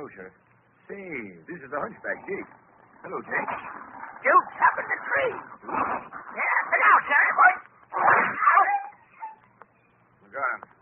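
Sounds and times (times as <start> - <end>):
speech: 0.1 - 8.8
dog yelping and whimpering: 8.0 - 9.6.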